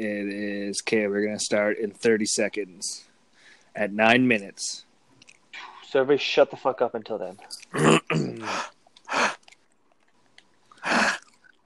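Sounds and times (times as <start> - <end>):
speech: 0.0 - 3.1, 3.7 - 4.9, 5.6 - 8.7
person murmuring: 7.5 - 9.3
person chewing crunchily against a microphone: 8.9 - 11.6.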